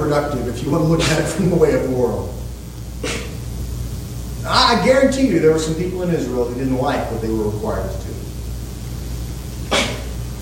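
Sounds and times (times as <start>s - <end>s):
speech: 0.0s - 2.4s, 4.4s - 8.3s
low steady room hum: 0.0s - 10.4s
person in an audience sneezing: 3.0s - 3.4s, 9.7s - 10.2s.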